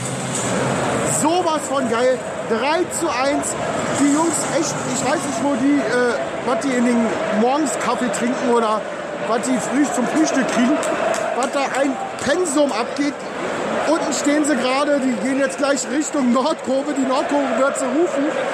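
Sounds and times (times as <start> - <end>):
football stadium crowd roar: 0.0 - 18.5
man talking excitedly: 1.1 - 13.2, 13.8 - 18.3
speech: 1.6 - 13.3, 13.9 - 18.5.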